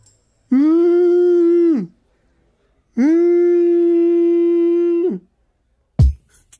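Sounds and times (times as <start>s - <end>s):
person imitating a whale call: 0.5s - 2.0s, 2.9s - 5.3s.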